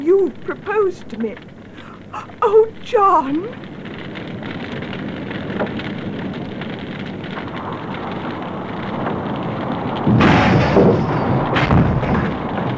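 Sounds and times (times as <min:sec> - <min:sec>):
fire crackling and roaring in a burning house: 0:00.0 - 0:12.7
speech: 0:00.1 - 0:01.5, 0:02.1 - 0:03.8
stairs collapsing inside a burning house: 0:07.4 - 0:12.7.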